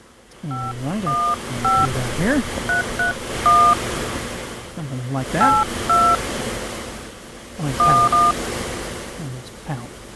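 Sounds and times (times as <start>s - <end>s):
faint hiss: 0.0s - 10.1s
speech: 0.4s - 4.1s, 4.8s - 6.0s, 7.6s - 8.5s, 9.7s - 9.9s
touch-tone phone keypad beeps on a reservation phone line: 0.5s - 3.8s, 5.4s - 6.2s, 7.8s - 8.4s.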